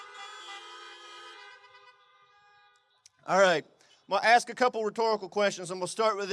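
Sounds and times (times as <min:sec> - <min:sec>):
horn honking: 0:00.0 - 0:04.3
speech: 0:03.3 - 0:06.3.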